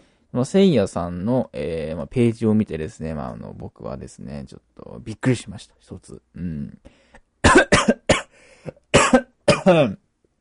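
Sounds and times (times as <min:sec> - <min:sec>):
speech: 0:00.3 - 0:07.6, 0:09.6 - 0:10.0
person coughing harshly after choking: 0:07.4 - 0:10.0.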